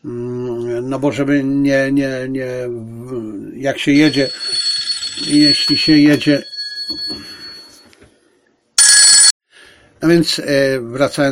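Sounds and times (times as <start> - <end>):
speech: 0.9 - 7.3, 10.0 - 11.3
phone ringing with high electronic trill: 3.9 - 7.9, 8.8 - 9.3.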